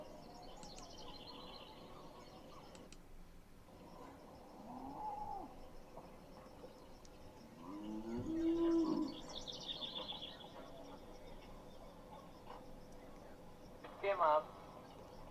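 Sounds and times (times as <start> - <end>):
faint bird chirps: 0.0 - 3.0, 3.7 - 15.2
outdoor ambience on a farm: 0.0 - 15.2
cow mooing on a farm: 7.6 - 9.2.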